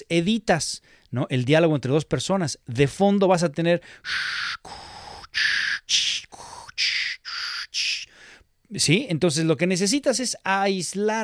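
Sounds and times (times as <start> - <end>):
speech: 0.1 - 6.0, 8.7 - 11.2
voice imitating ocean waves: 4.1 - 8.1.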